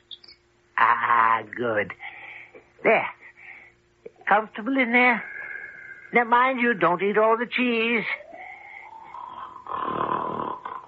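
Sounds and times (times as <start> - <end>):
steady droning hum: 0.0 - 10.8
speech: 1.4 - 2.1, 2.8 - 3.2, 4.3 - 5.3, 6.1 - 8.2
giant snoring loudly: 8.8 - 10.8.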